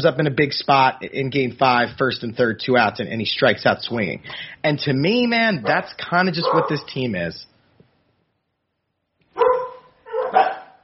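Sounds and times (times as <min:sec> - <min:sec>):
speech: 0:00.0 - 0:07.5
dog barking: 0:05.6 - 0:06.8, 0:09.4 - 0:10.8.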